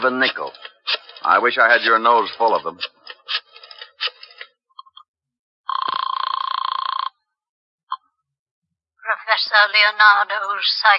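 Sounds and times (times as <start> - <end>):
speech: 0.0 - 3.4, 9.6 - 10.9
loud trilling telephone bell ring: 5.7 - 7.2.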